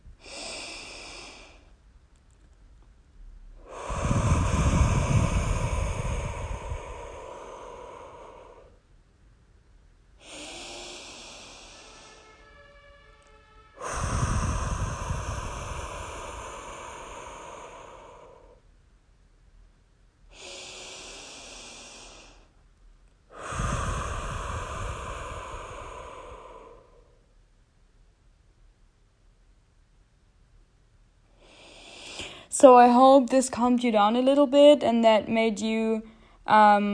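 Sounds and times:
slow deep breaths drawn into the belly: 0.0s - 1.9s, 3.4s - 9.0s, 10.1s - 18.8s, 20.2s - 27.4s, 31.2s - 33.1s, 36.0s - 36.5s
speech: 32.6s - 36.9s.

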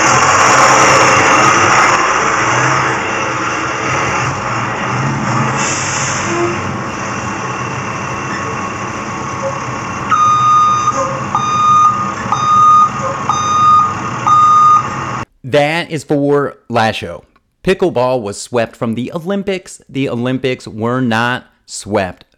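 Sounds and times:
loud reversing alarm beeping: 0.0s - 2.7s, 6.0s - 15.2s
large bus engine idling: 0.0s - 15.3s
speech: 15.6s - 22.2s.

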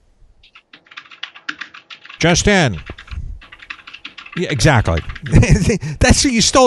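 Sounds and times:
rapid typing on a computer keyboard: 0.4s - 5.8s
speech: 2.2s - 2.9s, 4.4s - 6.6s
laughter: 4.6s - 6.3s.

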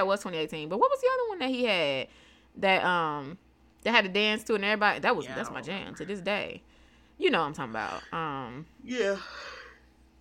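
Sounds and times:
speech: 0.0s - 9.5s
soft breathing: 6.6s - 7.2s
breathy yawn: 8.9s - 9.8s.

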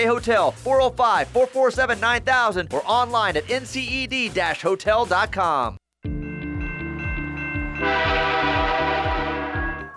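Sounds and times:
speech: 0.0s - 5.8s
train horn blaring: 7.8s - 9.8s.

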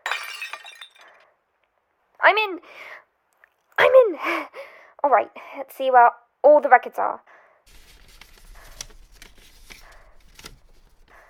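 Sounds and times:
glass shards tinkling: 0.0s - 1.2s
ticket office window glass shattering during a break-in: 0.0s - 1.2s
speech: 2.3s - 3.1s, 4.1s - 7.3s.

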